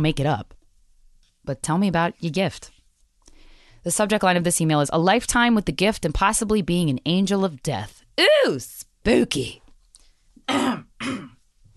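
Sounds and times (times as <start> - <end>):
speech: 0.0 - 0.6, 1.5 - 2.8, 3.8 - 9.6, 10.5 - 11.3
loud harsh rasping throat-clearing coughs: 10.5 - 11.4.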